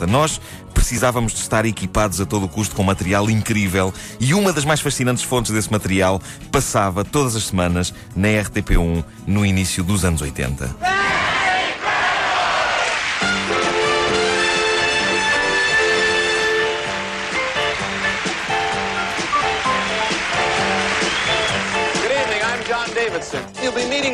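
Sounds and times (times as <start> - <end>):
speech: 0.0 - 11.3
large studio audience of a TV series roaring and shouting: 10.8 - 13.1
bright brassy music: 13.1 - 24.1.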